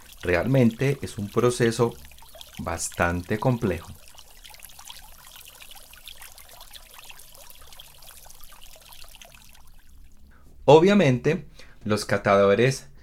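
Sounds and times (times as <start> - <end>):
hot water poured onto ground coffee: 0.0 - 10.3
speech: 0.2 - 4.0, 10.7 - 12.9.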